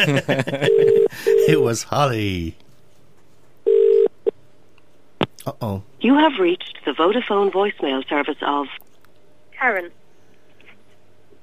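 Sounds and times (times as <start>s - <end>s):
laughter: 0.0s - 1.6s
speech: 0.0s - 2.6s, 5.5s - 8.8s, 9.6s - 10.0s
phone ringback tone heard through a handset: 0.7s - 1.6s, 3.7s - 4.1s.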